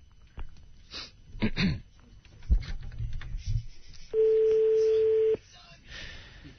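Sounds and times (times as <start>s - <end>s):
telephone ringing tone as a call is placed: 4.2s - 5.4s
speech: 4.9s - 5.9s.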